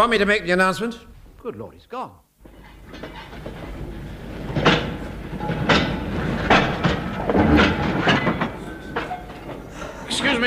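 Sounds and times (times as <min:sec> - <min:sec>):
speech: 0:00.0 - 0:02.2, 0:10.2 - 0:10.4
bright clanking bursts from a train: 0:02.4 - 0:10.4
train rumbling through a station: 0:02.4 - 0:10.4.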